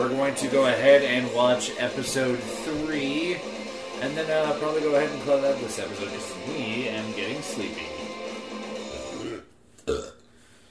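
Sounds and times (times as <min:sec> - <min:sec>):
speech: 0:00.0 - 0:08.1
person burping: 0:08.9 - 0:10.4.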